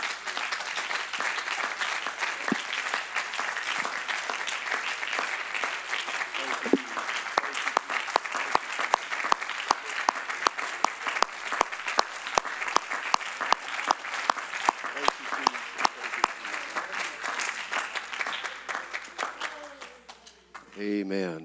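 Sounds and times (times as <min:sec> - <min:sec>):
audience applauding at a church service: 0:00.0 - 0:21.0
voices: 0:04.6 - 0:08.7, 0:14.8 - 0:21.4.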